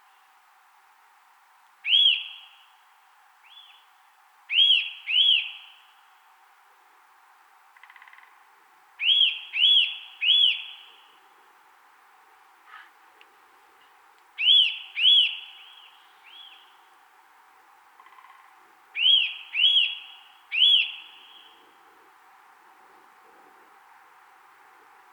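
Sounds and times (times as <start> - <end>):
Eurasian nuthatch calling with ringing whistles: 4.5 - 5.7, 9.0 - 10.9, 14.4 - 16.7, 19.0 - 21.5.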